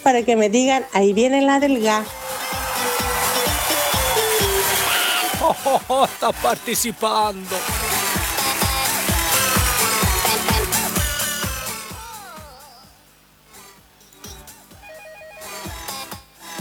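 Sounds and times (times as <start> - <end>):
speech: 0.0 - 2.3, 5.4 - 8.0
steady rhythmic beat: 1.6 - 16.6
laughter: 2.2 - 9.1
telephone ringing with a bright melodic electronic tone: 14.8 - 16.0.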